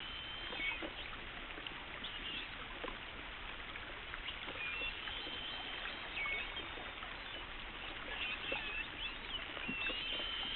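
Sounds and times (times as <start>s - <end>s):
underwater noise: 0.0s - 10.5s
spinner dolphin whistles: 4.7s - 7.4s, 8.1s - 10.5s.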